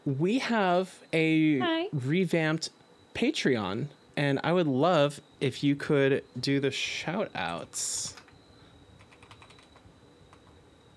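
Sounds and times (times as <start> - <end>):
speech: 0.0 - 8.2
steady hum: 0.0 - 10.9
computer keyboard typing: 9.0 - 10.5.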